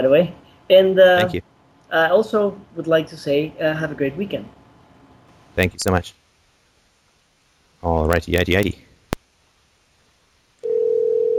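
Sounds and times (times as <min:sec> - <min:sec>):
speech: 0:00.0 - 0:04.6, 0:05.6 - 0:06.2, 0:07.8 - 0:08.8
steady loud telephone dial tone while placing call: 0:10.6 - 0:11.3.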